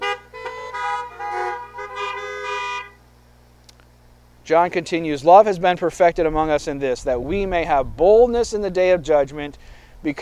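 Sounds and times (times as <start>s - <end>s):
several car horns honking: 0.0s - 3.0s
speech: 4.5s - 10.1s.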